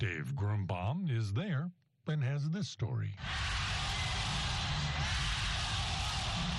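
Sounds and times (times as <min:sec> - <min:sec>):
speech: 0:00.0 - 0:03.7
huge crowd of thousands of supporters cheering and yelling: 0:03.2 - 0:06.5.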